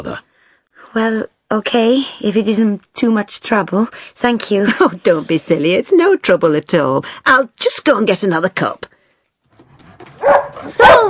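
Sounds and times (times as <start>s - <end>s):
speech: 0.0s - 8.9s, 10.2s - 11.0s
dog barking and whimpering indoors: 10.2s - 11.0s.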